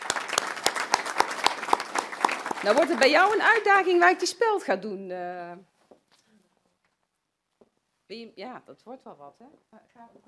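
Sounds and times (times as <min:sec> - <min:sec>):
applause from an audience at a meeting: 0:00.0 - 0:04.2
speech: 0:02.6 - 0:05.7, 0:08.1 - 0:10.2.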